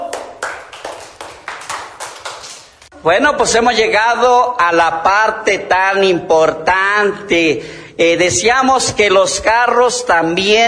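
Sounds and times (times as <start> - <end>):
hands clapping: 0.0 - 2.9
speech: 3.0 - 10.6.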